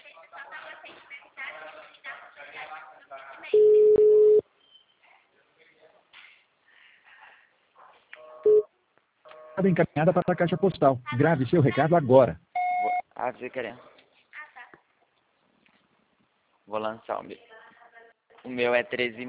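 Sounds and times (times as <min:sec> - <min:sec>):
telephone line tone as a number is dialed: 0:03.6 - 0:04.4, 0:08.2 - 0:08.7, 0:12.6 - 0:13.0
speech: 0:09.6 - 0:12.5, 0:13.2 - 0:13.9, 0:16.7 - 0:17.5, 0:18.4 - 0:19.2.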